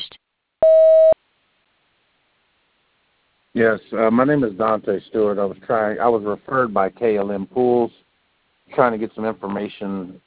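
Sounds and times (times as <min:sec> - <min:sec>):
voicemail message tone electronic beep: 0:00.6 - 0:01.2
speech: 0:03.6 - 0:08.0, 0:08.7 - 0:10.2.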